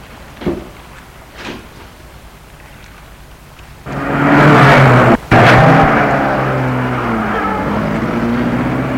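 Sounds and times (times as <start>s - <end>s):
car engine starting and running: 3.8s - 8.9s.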